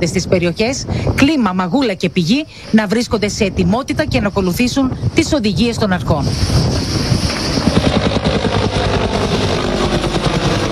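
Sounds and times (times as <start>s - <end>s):
speech: 0.0s - 7.1s, 7.9s - 9.1s
firefighting helicopter flying over wildfire: 4.8s - 10.7s.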